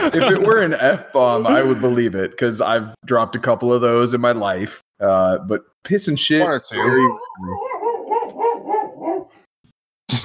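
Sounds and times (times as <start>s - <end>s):
laughter: 0.0s - 2.0s
speech: 0.0s - 7.8s
dog yelping barks: 6.8s - 9.4s.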